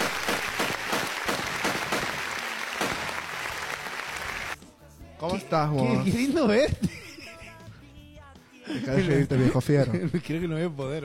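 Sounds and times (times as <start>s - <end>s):
audience applause of many hands clapping: 0.0s - 4.6s
speech: 5.2s - 6.9s, 8.8s - 11.0s
laughter: 5.9s - 7.8s, 8.6s - 10.6s.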